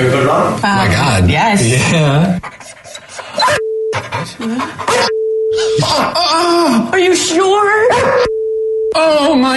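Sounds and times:
speech: 0:00.0 - 0:02.7, 0:04.2 - 0:08.4, 0:09.0 - 0:09.5
dog panting: 0:02.4 - 0:03.4, 0:04.0 - 0:05.1
dog barking: 0:04.8 - 0:05.1
steady electronic beep tones: 0:05.0 - 0:05.7, 0:08.0 - 0:09.2.

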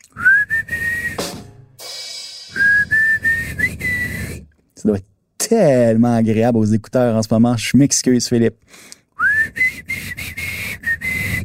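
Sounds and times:
band singer whistling a melody: 0:00.2 - 0:01.6, 0:02.3 - 0:04.5, 0:09.2 - 0:11.4
band backing music: 0:01.1 - 0:02.6
speech: 0:04.8 - 0:09.9.

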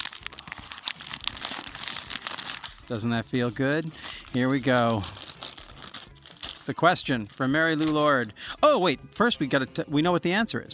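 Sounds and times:
paper being unfolded and crinkled: 0:00.0 - 0:08.3
speech: 0:02.9 - 0:05.2, 0:06.7 - 0:10.7.

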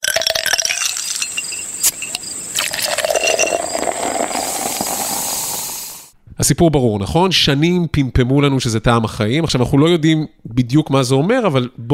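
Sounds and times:
ice cubes clinking in a full glass: 0:00.0 - 0:05.4
steady loud hiss: 0:00.9 - 0:06.2
speech: 0:06.4 - 0:11.9.

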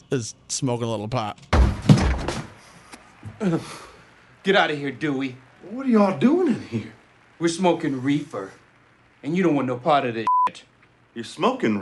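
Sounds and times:
speech: 0:00.1 - 0:02.4, 0:03.4 - 0:08.6, 0:09.2 - 0:11.8
door kicked in by a man backstage after a show: 0:01.5 - 0:02.6.

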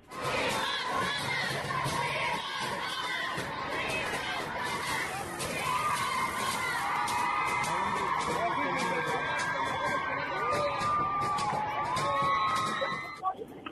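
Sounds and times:
large protest crowd of feminist groups chanting in the Zócalo of Mexico City: 0:00.1 - 0:13.1
high cheers and whoops from protest crowd: 0:05.5 - 0:13.2.

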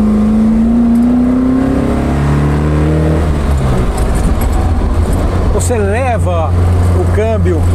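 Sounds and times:
car engine revving through a throaty exhaust: 0:00.0 - 0:07.7.

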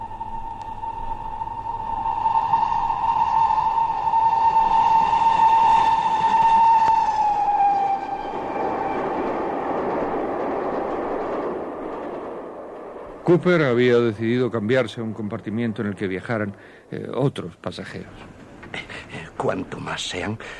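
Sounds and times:
train horn tone heard from inside rear carriage: 0:00.0 - 0:09.5
train rolling rumble heard from inside rear carriage: 0:00.0 - 0:20.5
speech: 0:13.3 - 0:20.5.

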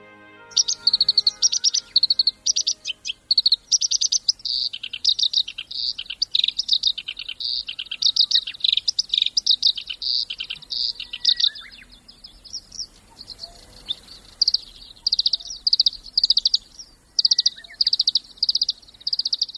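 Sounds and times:
black-browed reed warbler singing on a reed stem: 0:00.0 - 0:19.5.

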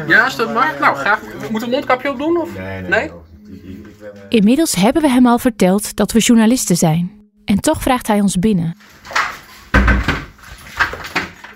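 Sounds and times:
speech: 0:00.0 - 0:03.3, 0:04.1 - 0:09.2
door shutting with a solid thump: 0:09.0 - 0:11.5.

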